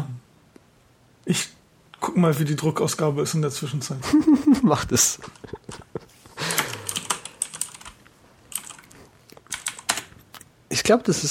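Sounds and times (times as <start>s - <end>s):
speech: 1.3s - 1.6s, 2.2s - 5.8s, 10.9s - 11.2s
laughter: 4.0s - 6.8s
typing on a computer keyboard: 6.5s - 10.1s.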